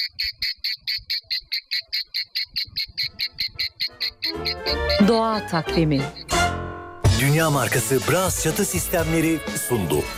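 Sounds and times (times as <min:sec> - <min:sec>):
cicadas buzzing: 0:00.0 - 0:06.4
speech: 0:04.6 - 0:06.2, 0:07.2 - 0:10.1.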